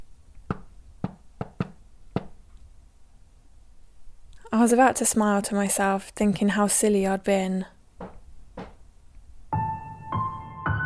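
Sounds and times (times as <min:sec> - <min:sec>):
dull woody knocking on wooden floor: 0:00.5 - 0:02.4, 0:08.0 - 0:08.8
speech: 0:04.6 - 0:07.8.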